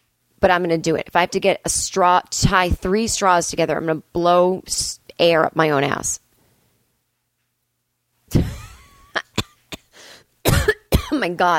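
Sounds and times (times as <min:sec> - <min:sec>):
speech: 0:00.4 - 0:06.2, 0:11.2 - 0:11.5
person coughing: 0:08.3 - 0:11.2
wheezy breath and raspy inhale: 0:09.8 - 0:10.3.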